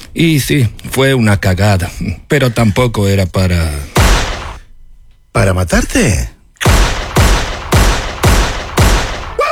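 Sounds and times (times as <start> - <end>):
speech: 0.2 - 4.0, 5.4 - 6.4
gunshots: 3.9 - 4.7, 6.6 - 9.4.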